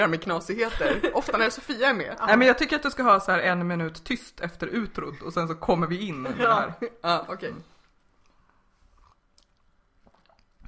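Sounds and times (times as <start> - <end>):
speech: 0.0 - 7.7
person slurping a drink: 8.8 - 10.6
wet mouth smacking: 9.0 - 10.6.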